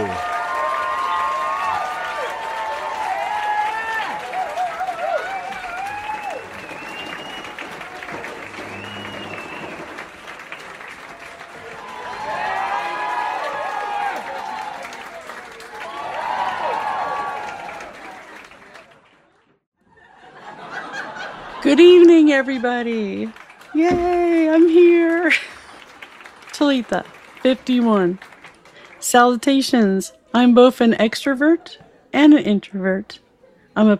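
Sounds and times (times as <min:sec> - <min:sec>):
live audience applauding and cheering with high whoops: 0:00.0 - 0:19.4, 0:20.7 - 0:29.1
laughter: 0:19.8 - 0:26.1
speech: 0:21.7 - 0:25.5, 0:26.6 - 0:28.2, 0:29.1 - 0:33.2, 0:33.8 - 0:33.9.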